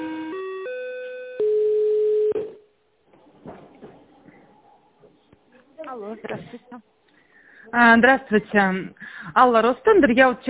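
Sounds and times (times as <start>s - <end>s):
electronic telephone tones during call transfer to internal extension: 0.0s - 2.6s
speech: 6.2s - 7.0s, 7.6s - 10.4s.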